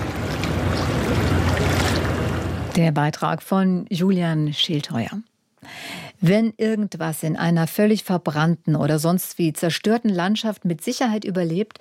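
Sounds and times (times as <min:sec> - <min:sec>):
water lapping against the lowest river steps on the Rhine during low water: 0:00.0 - 0:02.8
speech: 0:02.8 - 0:11.7.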